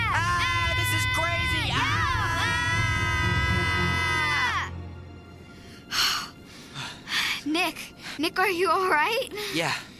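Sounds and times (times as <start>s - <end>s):
several people yelling loudly to scare off a cougar: 0.0s - 4.7s
speech: 7.7s - 9.9s.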